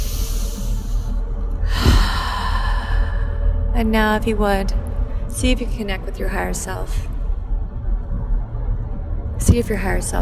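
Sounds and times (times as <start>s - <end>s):
deep breath during a guided gratitude meditation: 0.0s - 3.6s
low steady hum: 0.0s - 10.2s
speech: 3.8s - 4.8s, 5.4s - 7.1s, 9.5s - 10.2s.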